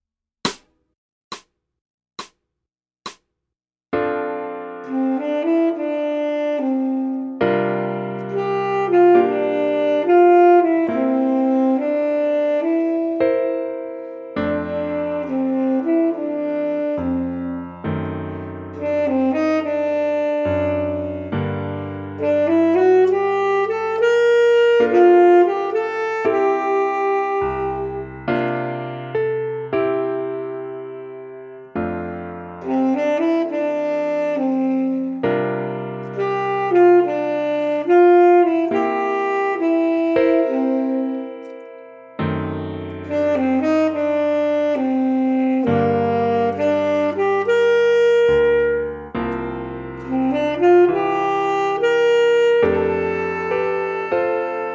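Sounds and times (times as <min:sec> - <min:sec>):
jazz tenor saxophone: 0:04.0 - 0:54.7.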